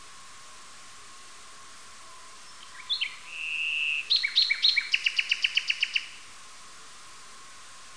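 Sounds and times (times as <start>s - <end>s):
common nightingale Luscinia megarhynchos singing: 2.0s - 6.3s.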